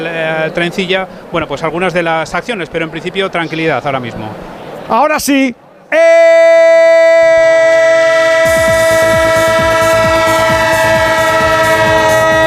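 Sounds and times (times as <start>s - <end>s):
speech: 0.0s - 7.0s
train horn sound effect in a radio jingle: 6.7s - 12.4s.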